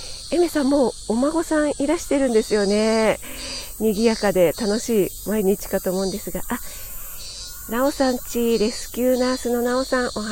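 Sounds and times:
cicadas buzzing in a park: 0.0 - 10.3
speech: 0.3 - 6.9, 7.7 - 10.3.

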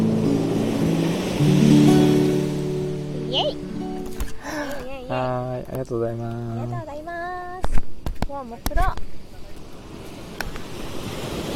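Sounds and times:
ocean waves washing onto the seashore at Hayama at dusk: 0.0 - 6.0, 8.4 - 11.5
speech: 5.2 - 7.2, 8.3 - 9.2.

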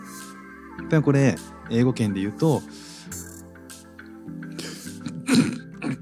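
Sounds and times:
speech: 0.8 - 3.2
soft breathy sounds: 2.6 - 3.3, 4.5 - 6.0
person sneezing: 4.6 - 6.0.

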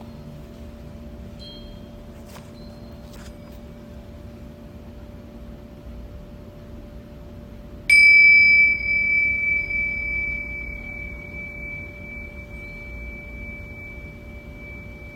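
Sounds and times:
low steady hum: 0.0 - 15.1
Tibetan singing bowl struck and ringing: 1.2 - 3.9, 7.9 - 15.1.

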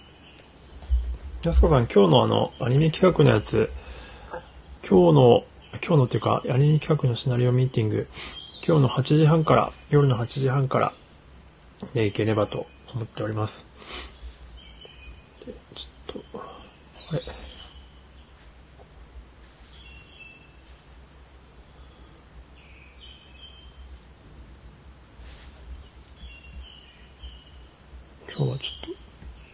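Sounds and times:
birds chirping: 0.0 - 29.5
low background hum: 0.0 - 29.5
speech: 1.4 - 3.8, 4.8 - 11.0, 11.9 - 14.1, 28.4 - 29.0
soft murmuring: 15.4 - 17.8.

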